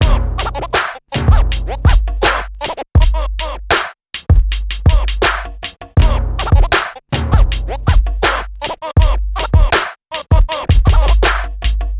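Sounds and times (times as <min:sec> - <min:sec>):
music loop: 0:00.0 - 0:03.6, 0:04.2 - 0:11.8.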